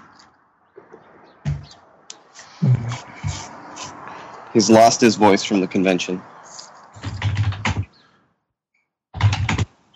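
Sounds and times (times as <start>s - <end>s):
speech: 4.5s - 6.4s
computer keyboard typing picked up through a call participant's microphone: 7.0s - 7.9s, 9.2s - 9.9s.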